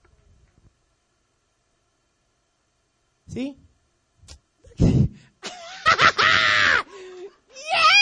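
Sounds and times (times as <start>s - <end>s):
speech: 3.4s - 3.6s
preacher screaming and whooping with excitement: 6.1s - 6.9s, 7.6s - 8.0s
breathy bursts: 6.8s - 7.4s.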